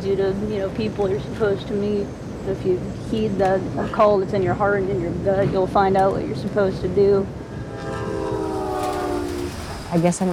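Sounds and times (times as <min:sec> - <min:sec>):
train rumbling on rails: 0:00.0 - 0:10.3
speech: 0:00.1 - 0:07.4, 0:09.9 - 0:10.3
long sustained train horn blaring: 0:07.4 - 0:10.0.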